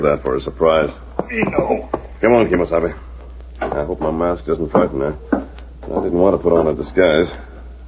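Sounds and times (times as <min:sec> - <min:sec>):
speech: 0:00.0 - 0:03.1, 0:03.7 - 0:07.5
footsteps approaching a door: 0:01.2 - 0:02.2, 0:03.2 - 0:06.9.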